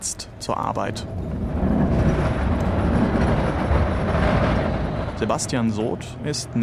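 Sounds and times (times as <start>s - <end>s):
speech: 0.0s - 1.7s, 5.2s - 6.6s
old tram clattering past: 0.3s - 6.6s
old tram rattling wheel noise: 0.4s - 6.6s.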